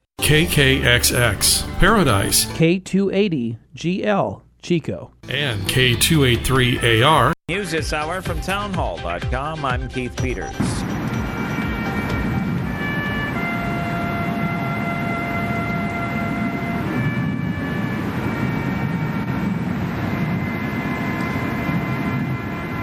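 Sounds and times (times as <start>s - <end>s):
speech: 0.3s - 10.8s
lone bugle playing slow long-held notes at a funeral: 11.0s - 22.8s.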